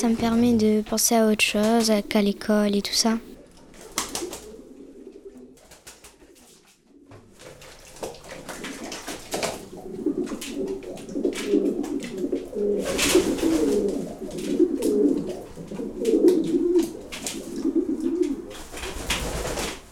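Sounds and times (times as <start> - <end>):
speech: 0.0 - 3.3
pigeons cooing at a pigeon loft bath: 3.4 - 19.6
pigeon wings flapping: 3.6 - 19.9
splashing-like rustles of pigeons bathing: 5.7 - 17.7.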